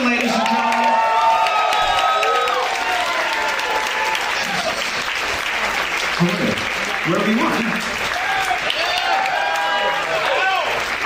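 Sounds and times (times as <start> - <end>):
crowd applauding: 0.0 - 11.0
scattered whistles and cheers: 0.4 - 4.8, 8.1 - 10.8.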